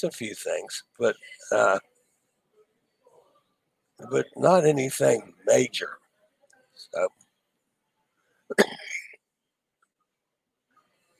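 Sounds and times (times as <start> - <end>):
speech: 0.0 - 1.9, 4.0 - 6.0, 6.9 - 7.2, 8.5 - 9.0
person coughing from medication: 8.5 - 9.2.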